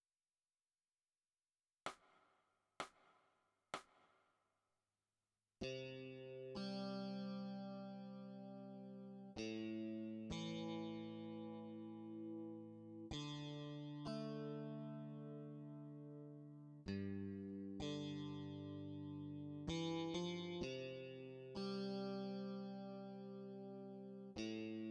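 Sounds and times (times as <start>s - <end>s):
electric guitar: 5.6s - 24.8s.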